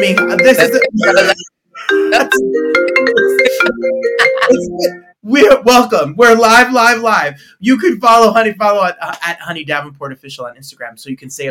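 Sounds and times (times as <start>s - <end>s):
mobile phone ringtone with electronic melody: 0.0s - 5.2s
speech: 0.0s - 11.4s.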